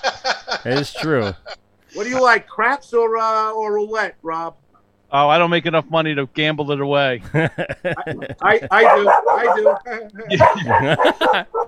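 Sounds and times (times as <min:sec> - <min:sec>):
laughter: 0:00.0 - 0:01.6, 0:07.2 - 0:11.6
speech: 0:00.6 - 0:11.6
dog barking: 0:08.7 - 0:11.6.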